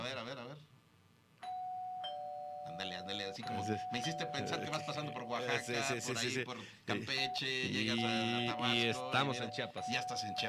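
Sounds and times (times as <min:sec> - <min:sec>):
electronic doorbell ringing with chime strikes: 0:01.4 - 0:06.2, 0:07.2 - 0:10.4
speech: 0:02.8 - 0:10.4.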